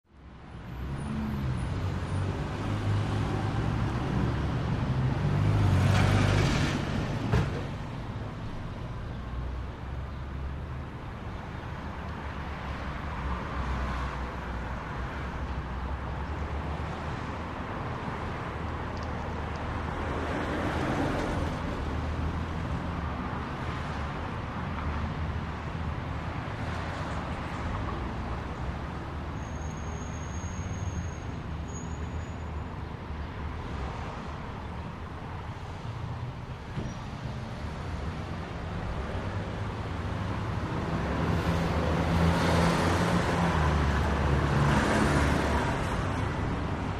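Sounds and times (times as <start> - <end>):
medium city traffic with various vehicle movement: 0.0 - 46.9.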